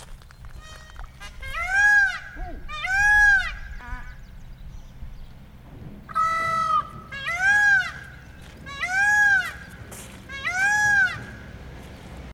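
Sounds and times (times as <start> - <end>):
Indian peafowl wailing calls: 0.6 - 4.2, 6.1 - 11.6.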